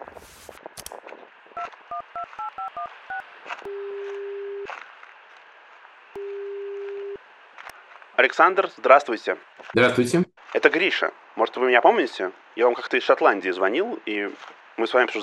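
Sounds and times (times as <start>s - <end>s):
touch-tone beeps of a telephone being dialed: 1.6s - 4.7s, 6.2s - 7.2s
speech: 8.2s - 15.2s.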